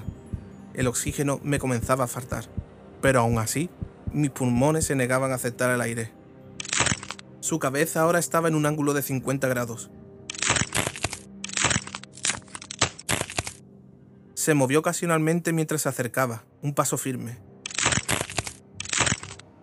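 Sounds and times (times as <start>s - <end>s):
speech: 0.8s - 6.2s, 7.4s - 10.0s, 14.4s - 17.5s
neck bones cracking: 10.3s - 13.6s, 17.7s - 19.4s.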